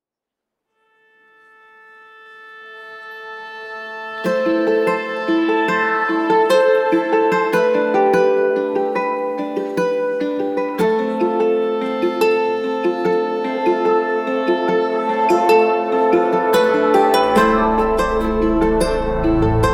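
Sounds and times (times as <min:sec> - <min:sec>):
small guitar: 0:01.3 - 0:19.7.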